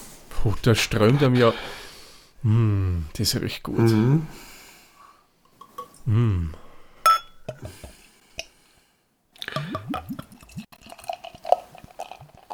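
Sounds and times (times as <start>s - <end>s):
speech: 0.4s - 1.8s, 2.4s - 4.5s, 6.1s - 6.6s, 7.5s - 7.9s
glass clink: 7.0s - 7.7s
beer glugging and splashing into a glass: 9.6s - 12.5s.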